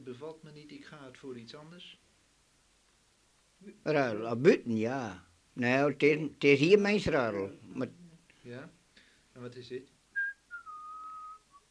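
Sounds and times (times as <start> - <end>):
speech: 0.1 - 2.1, 3.6 - 8.8, 9.4 - 10.0
person whistling: 10.2 - 11.6.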